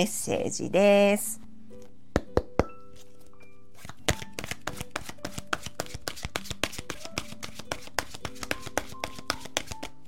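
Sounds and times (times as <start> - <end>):
speech: 0.0 - 1.4
oracle cards being shuffled and drawn: 3.8 - 10.0.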